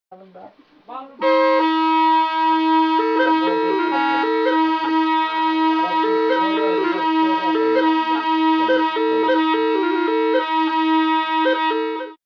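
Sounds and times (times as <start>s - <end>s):
duduk: 1.2s - 12.2s.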